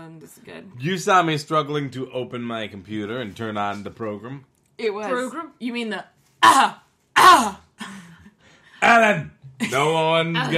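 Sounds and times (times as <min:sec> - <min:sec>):
speech: 0:00.2 - 0:08.0, 0:08.8 - 0:10.5
person clearing throat: 0:06.4 - 0:07.8.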